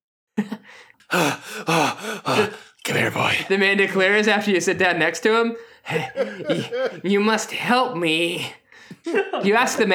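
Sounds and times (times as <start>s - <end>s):
man panting, out of breath: 0.4s - 2.8s, 5.6s - 7.0s
speech: 0.4s - 9.9s
laughter: 5.9s - 7.2s, 9.0s - 9.9s.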